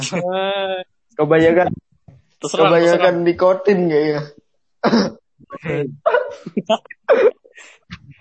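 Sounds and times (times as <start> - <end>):
laughter: 0.0 - 0.8, 2.4 - 3.2, 5.5 - 7.7
brief speech-like noises: 0.0 - 1.8, 5.5 - 8.1
speech: 0.0 - 1.8, 2.4 - 8.0
person coughing in harsh bursts: 4.8 - 7.8.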